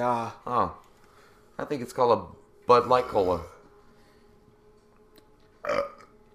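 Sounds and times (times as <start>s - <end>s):
speech: 0.0s - 0.9s, 1.6s - 3.5s, 5.6s - 5.9s
cat burping: 5.6s - 6.1s.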